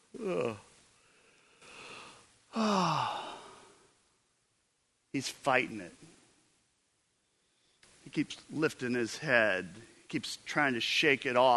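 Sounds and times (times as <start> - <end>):
person imitating a yawn: 0.1 - 0.7, 2.5 - 3.8
speech: 0.2 - 0.6, 5.2 - 6.2, 8.1 - 11.5.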